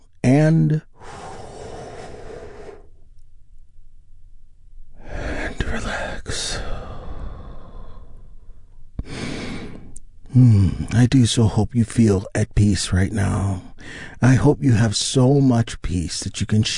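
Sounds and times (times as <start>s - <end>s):
speech: 0.4s - 0.9s, 10.4s - 16.7s
slow deep breathing in and out during a guided relaxation exercise: 0.9s - 3.1s, 4.9s - 11.0s, 13.6s - 14.2s.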